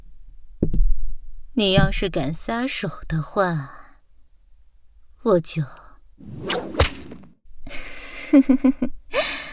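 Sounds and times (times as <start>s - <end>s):
speech: 1.6s - 3.8s, 5.2s - 6.8s, 7.7s - 9.3s
whip swishing through the air and cracking: 6.4s - 7.3s.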